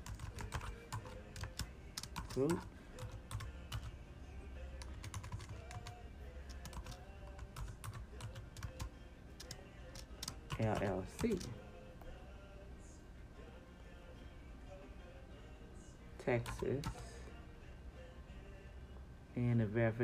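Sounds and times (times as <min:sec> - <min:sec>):
typing on a computer keyboard: 0:00.0 - 0:03.9, 0:04.8 - 0:11.6, 0:16.4 - 0:17.0
speech: 0:02.4 - 0:02.8, 0:10.6 - 0:11.6, 0:16.2 - 0:17.0, 0:19.4 - 0:20.0.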